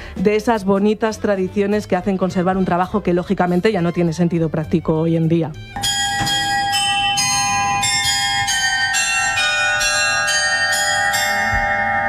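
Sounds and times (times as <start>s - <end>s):
speech: 0.2s - 5.9s
sustained resonant hum: 5.6s - 12.0s
bells of a medieval astronomical clock chiming inside a cathedral: 5.8s - 12.0s.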